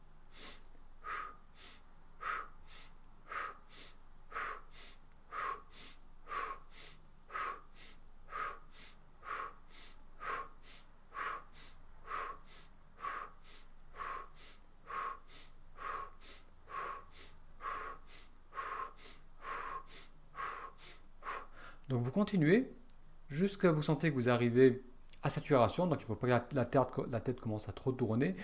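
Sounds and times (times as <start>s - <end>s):
rapid breathing exercise with forceful exhales through the mouth: 0.3s - 21.9s
speech: 21.9s - 22.8s, 23.4s - 28.4s.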